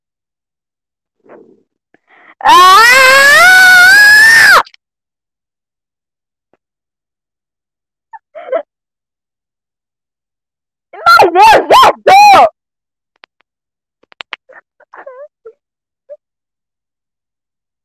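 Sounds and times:
speech: 2.4s - 3.3s
person screaming loudly: 2.4s - 4.6s, 11.0s - 12.5s.

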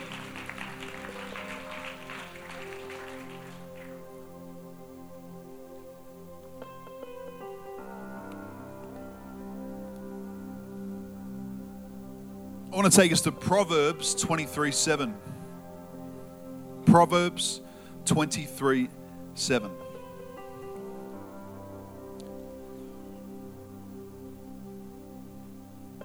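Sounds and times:
church audience clapping: 0.0s - 4.3s
soft sustained keyboard chords: 0.0s - 26.0s
speech: 12.8s - 15.4s, 16.9s - 19.8s.

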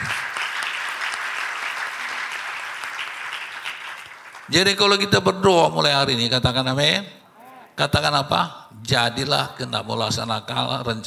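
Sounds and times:
audience applause: 0.0s - 4.6s
speech: 4.5s - 7.2s, 7.8s - 11.0s.

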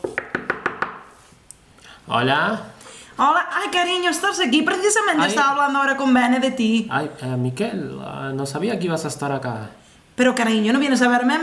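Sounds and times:
knocking on a door: 0.0s - 1.1s
speech: 2.1s - 11.4s.

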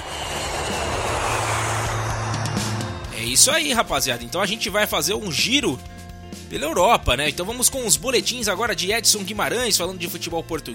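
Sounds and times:
airplane engine roar: 0.0s - 6.5s
speech: 3.4s - 10.7s.

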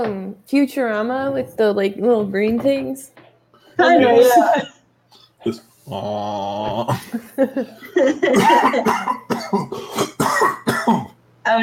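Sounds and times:
speech: 0.0s - 3.2s, 3.8s - 4.8s, 5.4s - 11.6s
phlegmy coughing in a rapid fit: 8.2s - 11.2s.

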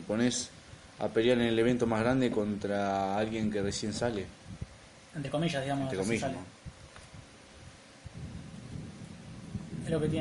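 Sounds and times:
faint hiss of rain: 0.0s - 10.1s
speech: 0.1s - 4.6s, 5.2s - 6.6s, 9.9s - 10.1s
low rolling thunder rumbling: 8.2s - 10.1s.

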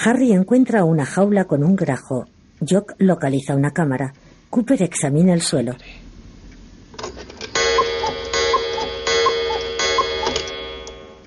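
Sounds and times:
speech: 0.0s - 6.1s
cuckoo clock ticking: 7.6s - 11.2s.

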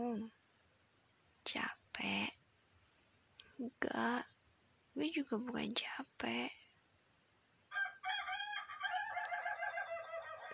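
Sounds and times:
speech: 0.0s - 0.4s, 1.5s - 2.4s, 3.6s - 4.3s, 5.0s - 6.6s
rooster crowing: 7.7s - 10.5s.

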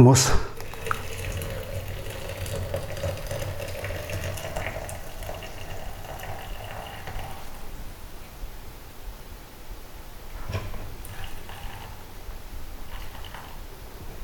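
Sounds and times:
speech: 0.0s - 0.5s
water pouring from an electric kettle into a pot for tea: 0.6s - 7.9s, 10.5s - 14.2s.

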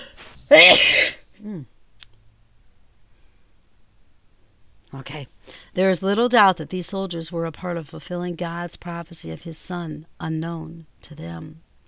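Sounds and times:
person sneezing: 0.0s - 1.7s
speech: 0.5s - 1.7s, 5.0s - 11.6s.

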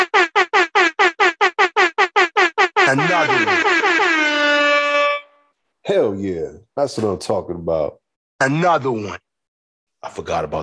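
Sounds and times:
air horn sound effect blasts: 0.0s - 5.5s
speech: 5.9s - 9.2s, 10.0s - 10.6s.

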